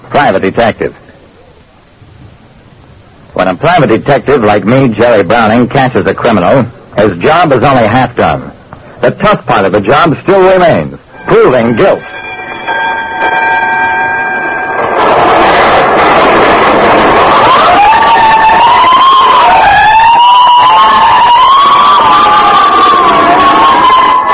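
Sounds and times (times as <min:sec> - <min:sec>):
street noise: 0:00.0 - 0:24.3
speech: 0:00.2 - 0:01.0, 0:03.4 - 0:12.1
fire engine sirens wailing at night: 0:11.1 - 0:24.3.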